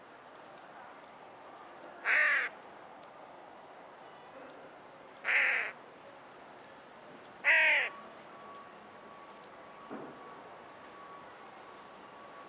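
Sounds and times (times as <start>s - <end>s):
carrion crow Corvus corone giving harsh raspy caws: 2.0s - 2.5s, 5.2s - 5.8s, 7.4s - 7.9s.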